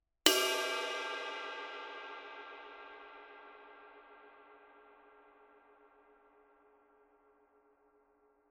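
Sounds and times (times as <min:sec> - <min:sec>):
22-inch dark crash ride cymbal bell: 0:00.3 - 0:04.2.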